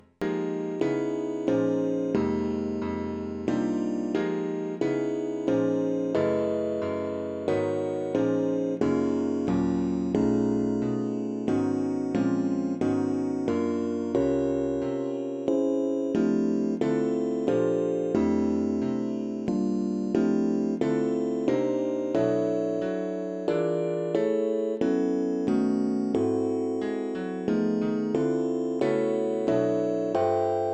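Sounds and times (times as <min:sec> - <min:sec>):
solo piano: 0:00.0 - 0:30.7.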